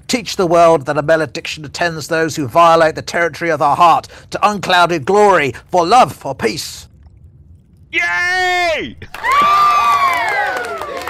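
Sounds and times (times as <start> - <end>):
speech: 0.1 - 6.9, 7.9 - 10.8
large crowd cheering wildly: 9.1 - 11.0.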